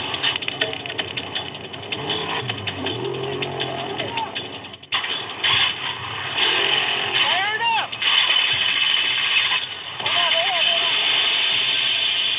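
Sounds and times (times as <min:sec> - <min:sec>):
trophy truck engine cranking and revving after a thrown serpentine belt: 0:00.0 - 0:12.3
voices shouting: 0:03.8 - 0:04.5, 0:07.2 - 0:08.0, 0:10.0 - 0:11.0.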